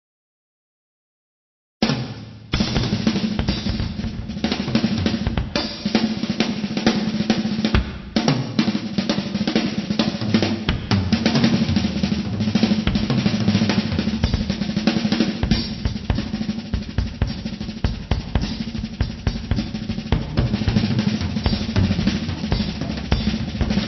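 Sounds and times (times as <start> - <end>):
drum fills: 1.8 - 23.8.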